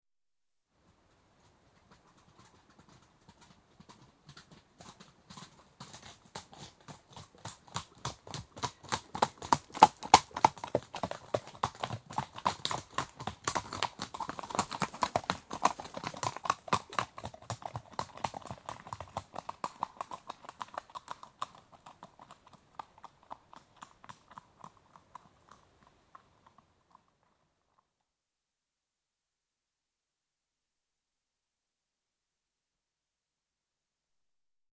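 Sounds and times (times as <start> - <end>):
two horses cantering: 1.4 - 27.4.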